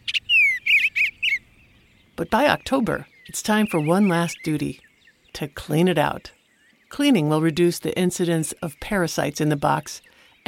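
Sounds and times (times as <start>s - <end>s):
tree swallows calling: 0.0s - 10.4s
speech: 2.2s - 10.4s.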